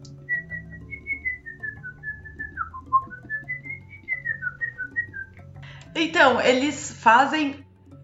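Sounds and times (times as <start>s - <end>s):
person whistling in imitation of a capuchin monkey call: 0.2s - 5.4s
speech: 6.0s - 7.6s.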